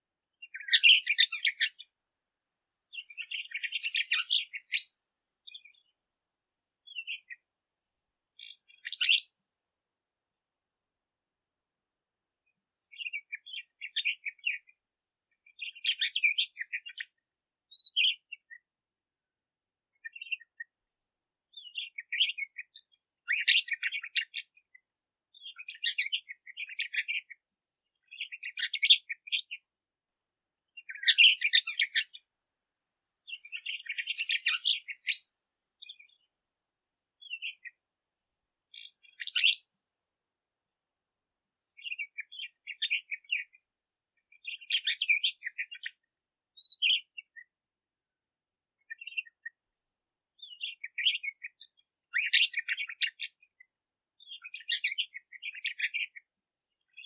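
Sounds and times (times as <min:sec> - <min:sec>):
red-rumped bird singing: 0:00.4 - 0:01.9, 0:02.9 - 0:05.9, 0:06.8 - 0:07.4, 0:08.4 - 0:09.3, 0:12.8 - 0:14.7, 0:15.4 - 0:18.6, 0:20.0 - 0:20.6, 0:21.5 - 0:24.5, 0:25.3 - 0:27.4, 0:28.0 - 0:29.6, 0:30.8 - 0:32.3, 0:33.2 - 0:36.3, 0:37.2 - 0:37.8, 0:38.7 - 0:39.7, 0:41.6 - 0:43.6, 0:44.3 - 0:47.5, 0:48.9 - 0:49.6, 0:50.4 - 0:53.4, 0:54.2 - 0:56.2.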